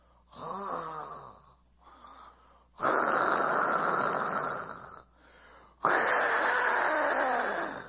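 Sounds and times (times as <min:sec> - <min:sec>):
voice imitating loud snoring: 0:00.3 - 0:01.6, 0:02.8 - 0:05.1, 0:05.8 - 0:07.8.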